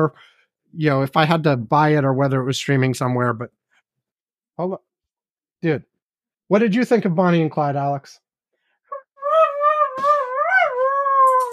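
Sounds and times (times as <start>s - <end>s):
speech: 0.0s - 3.6s, 4.6s - 4.9s, 5.6s - 5.9s, 6.5s - 8.2s
dog yipping: 8.9s - 11.5s.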